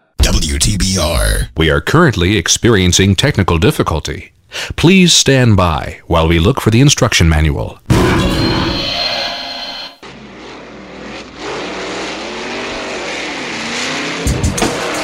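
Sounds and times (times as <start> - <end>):
speech: 0.5 - 8.7
fast car accelerating: 10.0 - 15.0.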